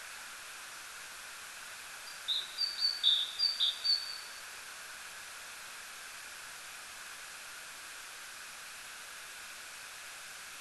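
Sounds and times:
steady hiss: 0.0s - 10.6s
Great tit Parus major singing whistled notes: 2.1s - 4.4s.

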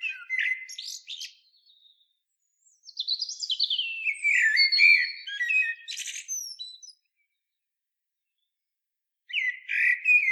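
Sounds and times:
common blackbird Turdus merula singing: 0.0s - 7.0s, 9.3s - 10.2s.

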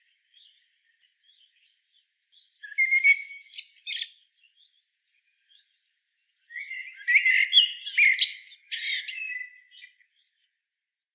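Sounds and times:
common blackbird Turdus merula singing fluting notes and squeaky twitters: 2.4s - 4.7s, 6.5s - 10.3s.

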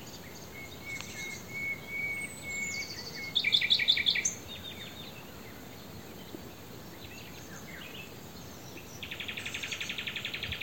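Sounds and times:
common nightingale song: 0.0s - 10.6s.

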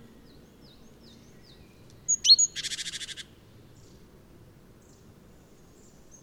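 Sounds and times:
great tit Parus major whistle, clipped notes and buzzy churr: 1.4s - 3.2s.

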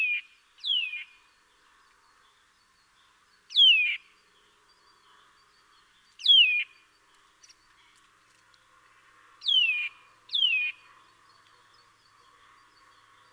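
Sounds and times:
Eurasian nuthatch Sitta europaea calls: 0.0s - 1.2s, 3.5s - 4.0s, 6.2s - 6.8s, 9.4s - 10.8s.

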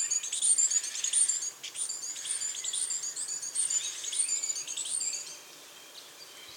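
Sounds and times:
great tit Parus major calling: 0.0s - 5.0s.

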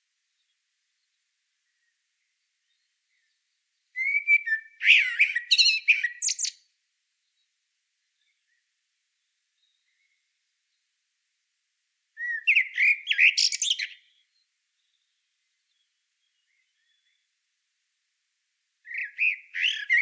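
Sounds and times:
Turdus merula common blackbird singing: 4.0s - 6.6s, 12.2s - 17.2s, 18.9s - 19.9s.

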